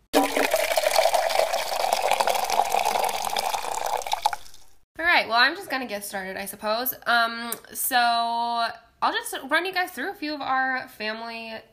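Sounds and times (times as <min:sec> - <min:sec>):
coffee pouring into a cup: 0:00.2 - 0:04.7
speech: 0:05.3 - 0:11.7.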